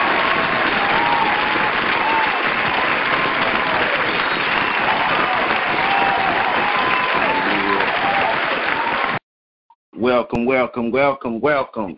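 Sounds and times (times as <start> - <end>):
large audience clapping to welcome a speaker: 0.0 - 9.2
scattered cheers and whoops from audience: 0.0 - 9.2
speech: 10.0 - 11.9.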